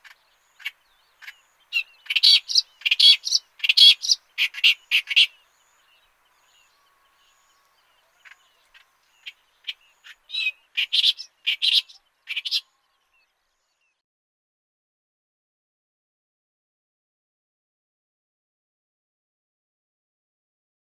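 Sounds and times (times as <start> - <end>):
clamorous reed warbler song of scratchy croaking notes: 0.0 - 14.0.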